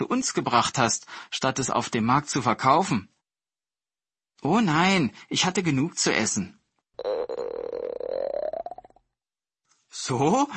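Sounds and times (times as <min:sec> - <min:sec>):
speech: 0:00.0 - 0:03.2, 0:04.4 - 0:07.1, 0:09.9 - 0:10.5
hungry boy's stomach growling: 0:07.0 - 0:09.1.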